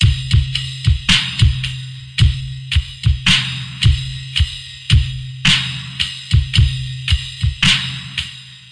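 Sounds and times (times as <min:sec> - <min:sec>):
slow skank music beat: 0:00.0 - 0:08.7.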